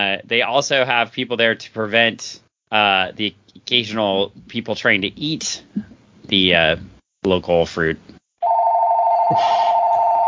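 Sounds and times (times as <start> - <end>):
speech: 0.0 - 8.2, 9.3 - 9.6
telephone ringing with a bright continuous electronic tone: 8.4 - 10.2.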